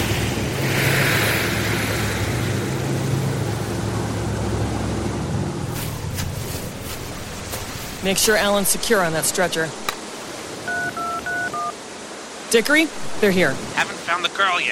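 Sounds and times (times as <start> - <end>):
boat engine rumbling approaching over the sea: 0.0 - 11.7
broad sea wash: 0.0 - 14.7
speech: 8.0 - 9.9, 12.5 - 14.7.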